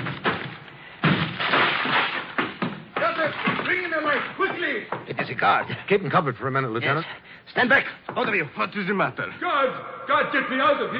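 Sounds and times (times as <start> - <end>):
door being broken down: 0.0 - 4.4
wood splintering: 0.0 - 4.7
speech: 4.8 - 10.9.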